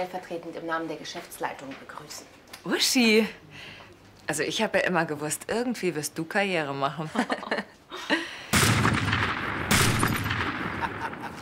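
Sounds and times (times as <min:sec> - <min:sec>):
speech: 0:00.0 - 0:08.2
laughter: 0:07.1 - 0:08.3, 0:10.7 - 0:11.4
loud gunshots in a shootout between men: 0:08.5 - 0:11.4.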